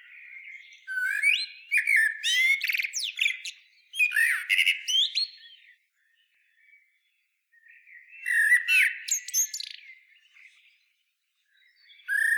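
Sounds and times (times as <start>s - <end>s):
common blackbird Turdus merula singing: 0.0s - 12.3s.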